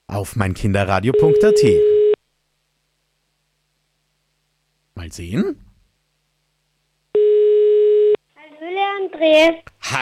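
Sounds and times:
speech: 0.1s - 1.9s, 5.0s - 5.6s, 9.1s - 10.0s
telephone line tone after dialing a number: 1.1s - 2.2s, 7.2s - 8.2s.

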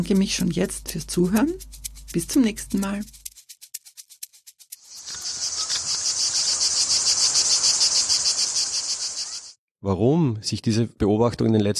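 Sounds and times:
speech: 0.0s - 3.2s, 9.8s - 11.7s
cicadas chirping and buzzing: 1.6s - 9.6s.

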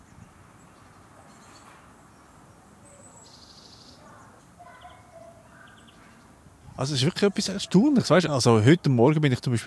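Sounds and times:
birds chirping in trees in early spring below freezing: 0.0s - 9.6s
steady outdoor hiss: 0.0s - 9.6s
speech: 6.8s - 9.6s.

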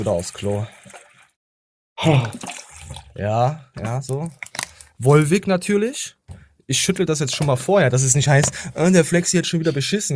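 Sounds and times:
speech: 0.0s - 1.0s, 2.0s - 2.6s, 3.2s - 10.1s
water poured into a container: 0.0s - 1.4s, 2.0s - 5.2s.

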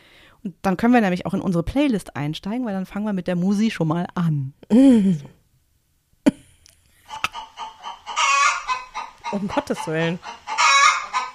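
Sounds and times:
speech: 0.4s - 5.4s, 9.3s - 10.4s
chickens cackling in chorus: 7.0s - 11.3s.

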